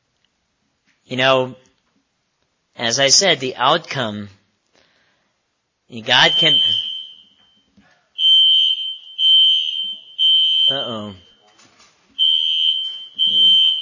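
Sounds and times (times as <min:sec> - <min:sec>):
speech: 0:01.1 - 0:01.6, 0:02.8 - 0:04.4, 0:05.9 - 0:06.8, 0:10.7 - 0:11.2
fire alarm beeping: 0:06.1 - 0:13.7.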